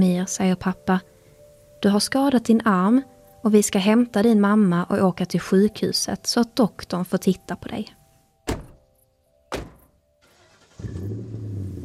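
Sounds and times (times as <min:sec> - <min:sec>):
speech: 0:00.0 - 0:01.2, 0:01.8 - 0:08.0
sharp thumps: 0:08.5 - 0:08.9, 0:09.5 - 0:10.0
car engine starting and running with a low rumble: 0:10.2 - 0:11.8.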